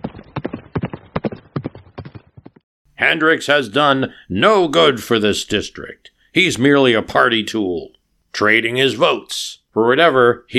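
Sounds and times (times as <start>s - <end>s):
horse hooves clip-clopping: 0.0s - 2.6s
speech: 3.0s - 10.5s.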